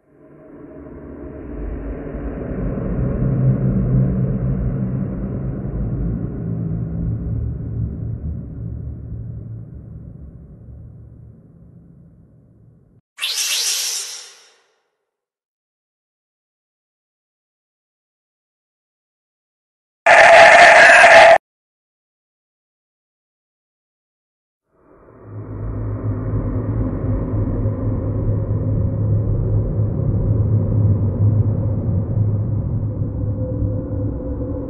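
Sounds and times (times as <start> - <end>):
paranormal horror sounds: 0.1 - 14.6, 20.1 - 21.4, 24.8 - 34.6.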